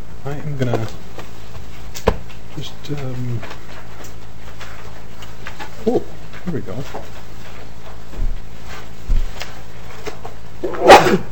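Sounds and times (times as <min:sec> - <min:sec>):
speech: 0:00.2 - 0:01.2, 0:02.6 - 0:03.6, 0:05.8 - 0:07.2, 0:10.6 - 0:11.3
sneeze during a committee hearing: 0:10.6 - 0:11.3.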